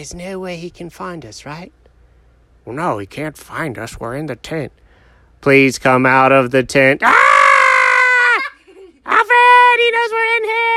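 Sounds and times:
speech: 0:00.0 - 0:01.8, 0:02.6 - 0:04.8, 0:05.4 - 0:07.3
person screaming loudly and high-pitched: 0:07.0 - 0:10.7.

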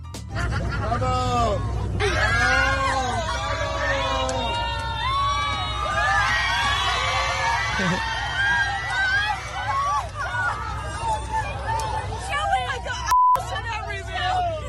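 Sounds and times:
low steady airplane engine hum: 0:00.0 - 0:14.6
airplane passengers laughing: 0:00.3 - 0:04.5, 0:06.1 - 0:13.1
airplane passengers cheering and whooping: 0:00.4 - 0:14.6.

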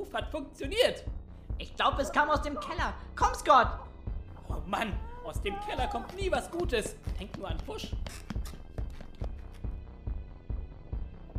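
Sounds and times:
speech: 0:00.1 - 0:03.9, 0:04.5 - 0:08.6
heavy footsteps approaching: 0:04.4 - 0:10.2.

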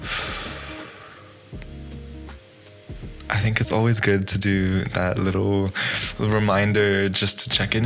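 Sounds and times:
deep breath in and out: 0:00.0 - 0:01.5
speech: 0:03.4 - 0:07.8.

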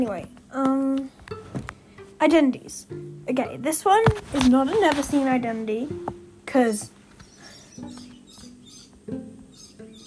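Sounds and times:
speech: 0:00.0 - 0:01.2, 0:02.2 - 0:07.0
soft steady hiss: 0:00.0 - 0:10.0
birds chirping outside a window: 0:06.6 - 0:10.0.

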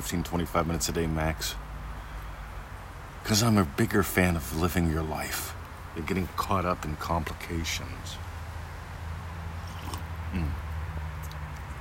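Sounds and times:
speech: 0:00.0 - 0:01.7, 0:03.3 - 0:08.3, 0:10.3 - 0:10.6
quiet sip of coffee with soft slurp and swallow: 0:09.6 - 0:11.8.

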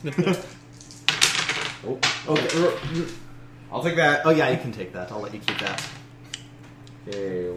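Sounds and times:
speech: 0:00.0 - 0:00.6, 0:01.8 - 0:06.0, 0:07.1 - 0:07.5
dice clattering onto a hard floor during a game: 0:00.8 - 0:02.9.

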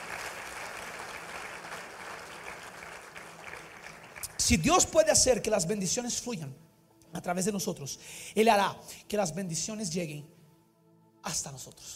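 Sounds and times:
church audience applauding after a prayer: 0:00.0 - 0:04.6
speech: 0:04.5 - 0:10.4, 0:11.2 - 0:11.9.

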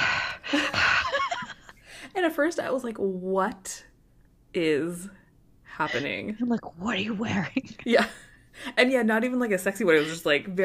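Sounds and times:
person imitating creepy heavy breathing into a phone: 0:00.0 - 0:01.2
speech: 0:02.2 - 0:03.9, 0:04.5 - 0:05.2, 0:05.8 - 0:10.6.

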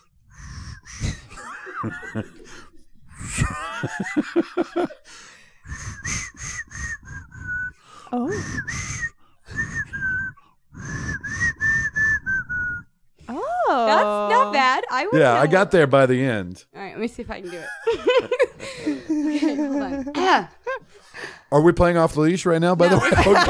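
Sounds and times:
laughter: 0:01.1 - 0:05.2, 0:13.4 - 0:16.1, 0:17.4 - 0:21.4, 0:22.8 - 0:23.4
speech: 0:01.8 - 0:02.7, 0:15.0 - 0:20.6, 0:21.2 - 0:23.4
person whistling a TV theme melody: 0:05.7 - 0:12.9.

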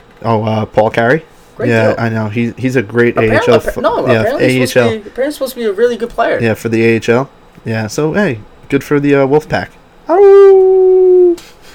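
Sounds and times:
speech: 0:00.2 - 0:10.6
laughter: 0:03.0 - 0:05.0
person imitating a wolf howl: 0:10.1 - 0:11.4.

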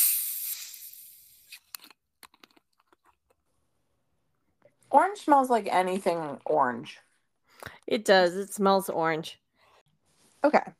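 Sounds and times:
carbonated orange drink fizzing after opening: 0:00.0 - 0:01.4
speech: 0:04.9 - 0:07.1, 0:07.9 - 0:09.4, 0:10.4 - 0:10.7.

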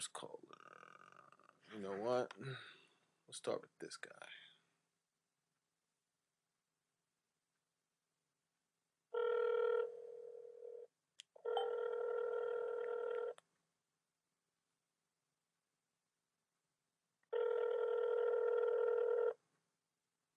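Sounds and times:
speech: 0:00.0 - 0:00.6, 0:01.7 - 0:04.5
phone ringback tone while waiting for pickup: 0:09.2 - 0:13.4, 0:17.3 - 0:19.4.

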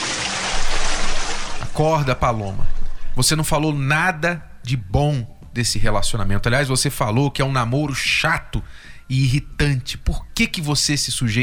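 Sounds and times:
bucket of water being poured out: 0:00.0 - 0:03.0
speech: 0:01.8 - 0:11.4.

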